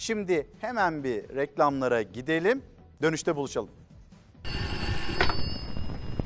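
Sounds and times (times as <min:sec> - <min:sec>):
speech: 0:00.0 - 0:04.6
telephone ringing with a bright trilling tone: 0:04.5 - 0:06.2.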